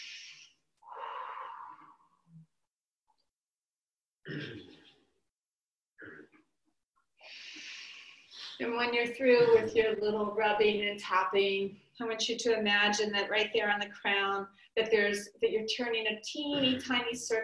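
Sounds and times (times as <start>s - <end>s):
speech: 4.3s - 4.8s, 8.6s - 17.4s
loud raspy breaths drawn in through the nose during a guided breathing exercise: 7.2s - 8.6s.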